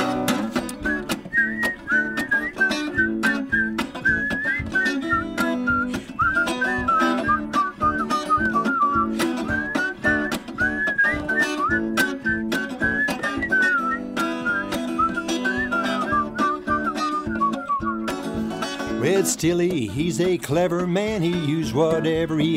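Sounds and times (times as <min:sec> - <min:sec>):
steady rhythmic instrumental backing: 0:00.0 - 0:22.5
group whistling a bright bouncy melody in unison: 0:00.7 - 0:18.4
speech: 0:19.4 - 0:22.5.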